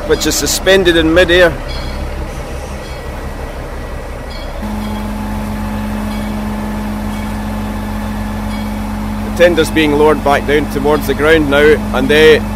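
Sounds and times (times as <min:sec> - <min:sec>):
diesel shunter locomotive engine rumbling and droning: 0:00.0 - 0:12.5
speech: 0:00.1 - 0:02.0, 0:09.4 - 0:12.5
sustained low hum: 0:01.6 - 0:12.5.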